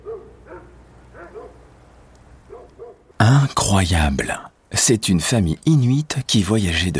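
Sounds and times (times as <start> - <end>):
sled dogs barking: 0.0 - 1.7, 2.4 - 3.1
soft hiss: 0.0 - 6.9
speech: 3.2 - 6.9.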